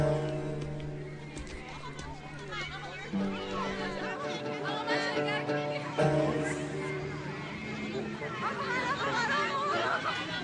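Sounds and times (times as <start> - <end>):
crowd of children chattering and laughing at an elementary school during break time: 0.1 - 10.3
children shouting: 1.3 - 10.3
children giggling: 8.1 - 10.3.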